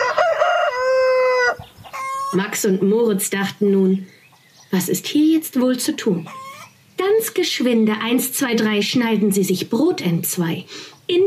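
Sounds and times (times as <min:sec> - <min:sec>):
rooster crowing: 0:00.0 - 0:02.4
speech: 0:02.3 - 0:06.4, 0:07.1 - 0:11.2.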